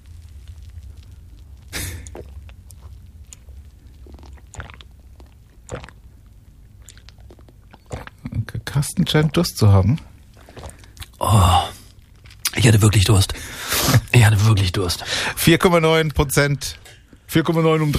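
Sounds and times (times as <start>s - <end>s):
low noise: 0.0s - 17.9s
person gulping sips of beer with a foamy head: 1.6s - 8.4s, 10.4s - 12.6s
speech: 8.7s - 10.1s, 12.7s - 17.9s.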